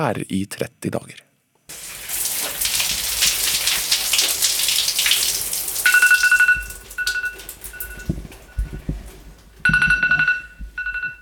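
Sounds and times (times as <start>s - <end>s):
speech: 0.0s - 1.3s
running shower in a home bathroom in Risør Norway: 1.7s - 9.6s
shower water splashing: 1.7s - 9.6s
phone alarm ringing in a home bathroom in Risør Norway: 5.8s - 8.9s, 9.6s - 11.2s.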